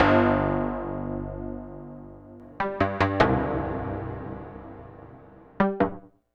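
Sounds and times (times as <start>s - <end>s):
synths: 0.0s - 6.1s.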